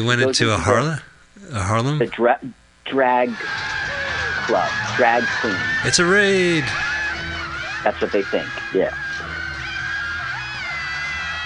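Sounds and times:
speech: 0.0 - 3.7, 4.5 - 6.9, 7.8 - 9.0
steady low hum: 0.0 - 11.4
woman's high-pitched scream in a film scene: 3.3 - 5.8, 6.8 - 11.4.

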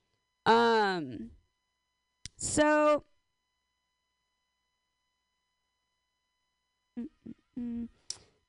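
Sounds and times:
speech: 1.0 - 1.4, 2.4 - 3.1, 7.0 - 8.0
person humming into a microphone: 6.9 - 8.2.

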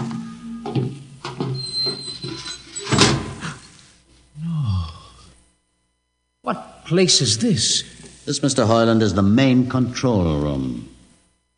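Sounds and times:
heavy door sliding open: 0.0 - 3.6
thin high whine: 0.0 - 11.5
speech: 6.5 - 10.9.

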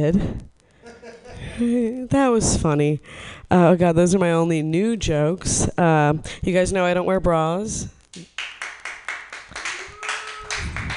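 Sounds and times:
speech: 0.0 - 0.5, 1.6 - 8.5
audience applauding: 8.3 - 10.9.

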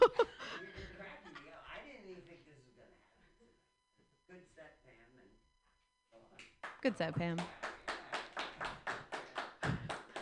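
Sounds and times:
laughter: 0.0 - 1.8
person clapping: 6.3 - 10.1
speech: 6.8 - 7.6.

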